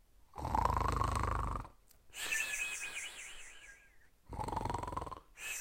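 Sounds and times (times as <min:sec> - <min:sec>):
man snoring: 0:00.3 - 0:01.8, 0:04.3 - 0:05.4.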